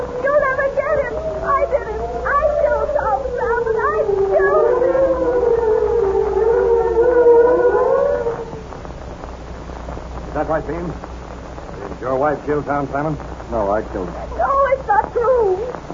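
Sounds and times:
police siren wailing: 0.0 - 8.6
speech: 12.5 - 15.9.

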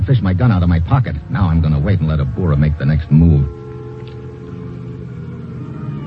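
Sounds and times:
car engine idling with slight revving outside: 0.0 - 6.0
speech: 0.1 - 3.6.

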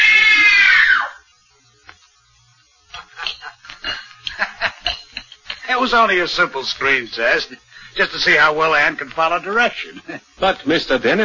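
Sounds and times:
woman screaming in terror: 0.0 - 1.2
speech: 5.8 - 11.2.

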